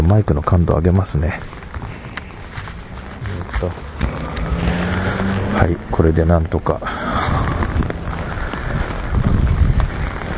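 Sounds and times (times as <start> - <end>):
speech: 0.0 - 1.7, 3.6 - 3.9, 5.6 - 7.9
low rumbling undertone: 0.0 - 10.3
steady rain pattering on a taut umbrella surface: 0.0 - 10.3.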